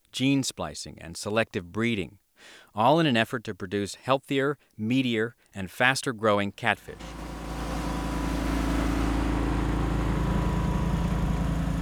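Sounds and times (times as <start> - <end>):
speech: 0.1 - 7.2
truck engine rumbling on a levee at a catfish farm: 6.8 - 11.8.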